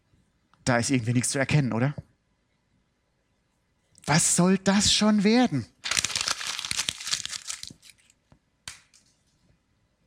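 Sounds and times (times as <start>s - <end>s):
speech: 0.7s - 2.1s, 4.1s - 5.7s
sheet of paper being crumpled up: 5.7s - 9.0s.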